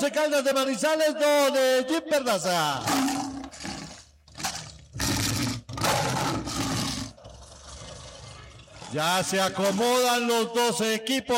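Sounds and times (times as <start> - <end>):
speech: 0.0 - 3.1, 8.9 - 11.3
lion roaring with deep rasping growl: 2.8 - 10.1.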